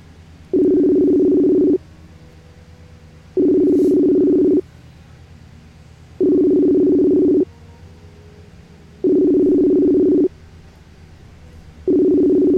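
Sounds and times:
telephone ringback tone: 0:00.5 - 0:01.8, 0:03.4 - 0:04.6, 0:06.2 - 0:07.5, 0:09.0 - 0:10.3, 0:11.9 - 0:12.5.

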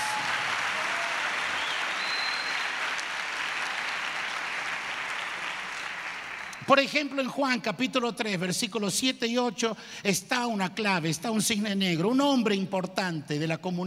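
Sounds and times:
audience applauding with dense clapping from many hands: 0:00.0 - 0:06.7
speech: 0:06.7 - 0:13.8.

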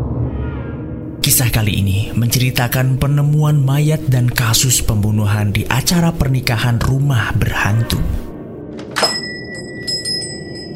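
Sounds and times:
speech: 0:01.2 - 0:08.2
doorbell ringing with a bright metallic chime: 0:09.0 - 0:10.7
soft tinkling: 0:09.0 - 0:10.7.

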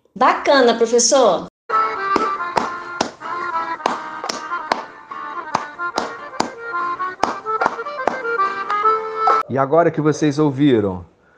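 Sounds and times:
speech: 0:00.2 - 0:01.5, 0:09.5 - 0:11.1
loud bright music: 0:01.7 - 0:09.4
hand claps keeping a steady beat: 0:02.0 - 0:09.4.

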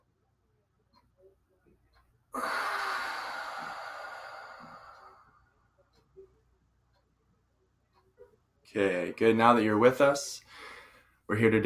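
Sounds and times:
slow breathing during a guided breathing exercise: 0:02.3 - 0:05.6, 0:10.4 - 0:11.2
speech: 0:08.7 - 0:10.4, 0:11.3 - 0:11.6.

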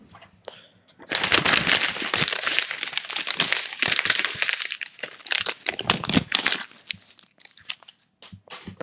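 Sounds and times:
paper crumpling and crinkling: 0:01.0 - 0:08.0.

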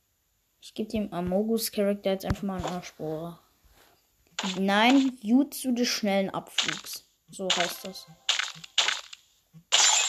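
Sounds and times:
speech: 0:00.6 - 0:03.4, 0:04.4 - 0:08.3
video game character smashing through glass: 0:07.6 - 0:10.0.

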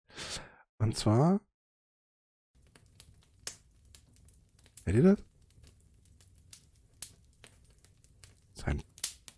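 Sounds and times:
speech: 0:00.8 - 0:01.5, 0:04.9 - 0:05.3, 0:08.6 - 0:08.9
fireplace crackling with pops and snaps: 0:02.6 - 0:09.3.

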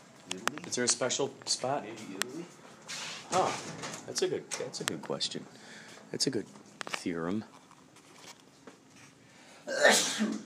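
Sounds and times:
speech: 0:00.7 - 0:07.6
person sneezing: 0:09.6 - 0:10.4.

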